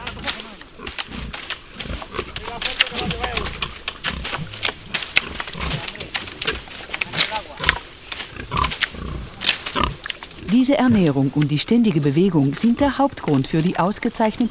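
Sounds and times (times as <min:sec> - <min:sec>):
crunching and rustling as pigs root on the ground for acorns: 0:00.0 - 0:11.2
Iberian pigs grunting and snuffling while foraging acorns: 0:00.0 - 0:14.4
speech: 0:10.5 - 0:14.4.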